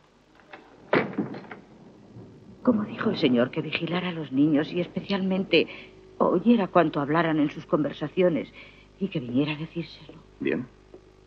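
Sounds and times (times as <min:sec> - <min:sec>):
door shut by a woman with a solid thump: 0:00.9 - 0:01.8
door knocking and rattling as it settles: 0:01.0 - 0:01.7
speech: 0:02.6 - 0:10.8.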